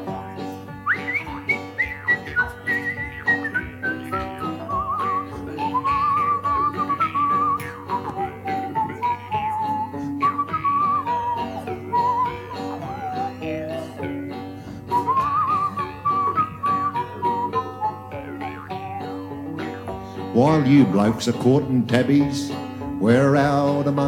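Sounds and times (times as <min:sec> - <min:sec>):
person whistling a lilting melody: 0:00.8 - 0:18.8
speech: 0:20.6 - 0:24.0.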